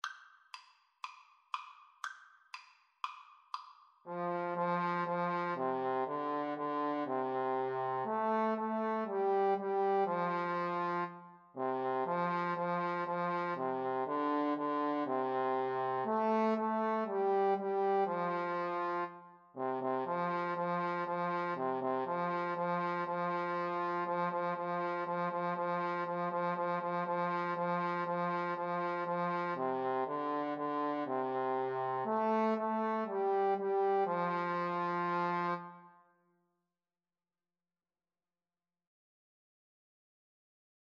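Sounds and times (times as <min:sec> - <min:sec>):
trombone duet playing a nursery rhyme: 0:04.1 - 0:35.6.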